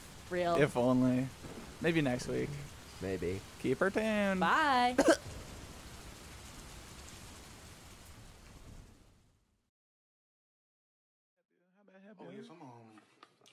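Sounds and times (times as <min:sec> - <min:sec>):
dense storm downpour rain hissing: 0:00.0 - 0:09.0
speech: 0:00.3 - 0:05.4.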